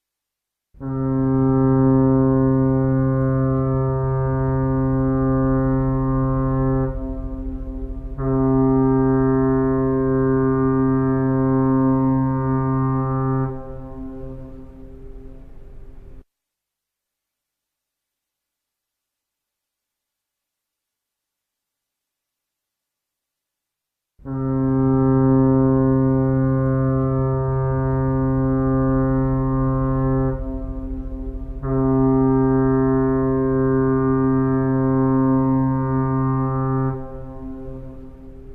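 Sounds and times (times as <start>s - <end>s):
fog horn: 0.8s - 16.2s, 24.2s - 38.5s.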